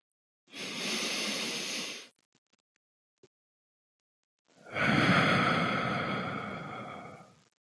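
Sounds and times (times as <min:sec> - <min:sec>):
deep breathing: 0:00.5 - 0:02.1, 0:04.6 - 0:07.5.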